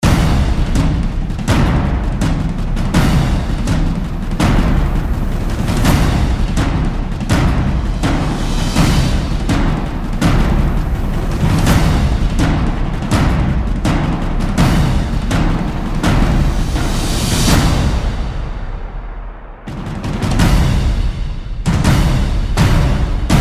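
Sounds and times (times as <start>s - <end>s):
drums: 0.0s - 23.3s.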